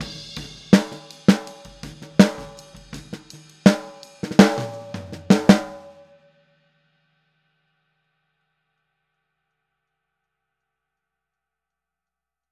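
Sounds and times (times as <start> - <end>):
boogaloo snare drum: 0.0 - 6.0.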